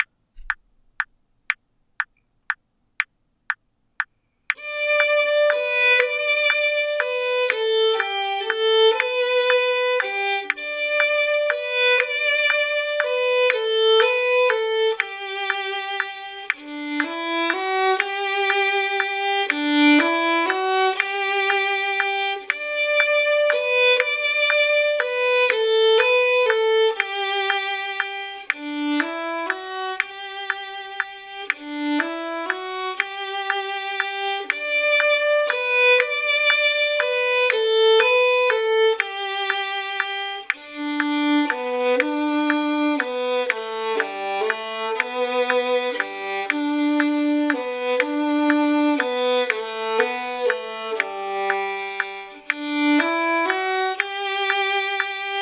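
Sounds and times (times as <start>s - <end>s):
metronome click at 120: 0.0s - 55.2s
violin waltz: 4.5s - 55.4s.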